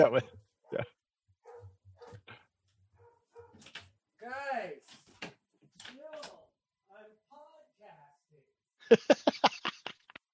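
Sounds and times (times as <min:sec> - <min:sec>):
speech: 0:00.0 - 0:00.9, 0:08.9 - 0:09.5
dogs barking: 0:00.1 - 0:03.6
laughter: 0:08.8 - 0:10.2.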